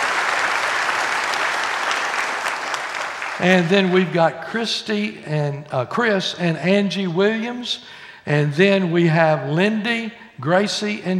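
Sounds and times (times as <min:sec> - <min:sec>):
crowd clapping in warm applause: 0:00.0 - 0:04.1
speech: 0:03.4 - 0:11.1.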